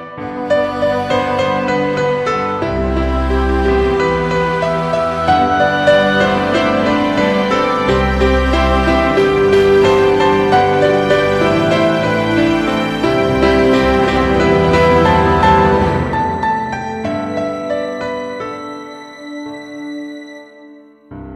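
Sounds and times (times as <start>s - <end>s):
lullaby: 0.2s - 21.1s.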